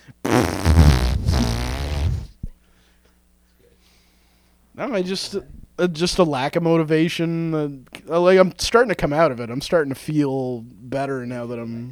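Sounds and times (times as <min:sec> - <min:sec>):
long buzzy fart noise blown by mouth: 0:00.2 - 0:02.4
speech: 0:04.8 - 0:11.8.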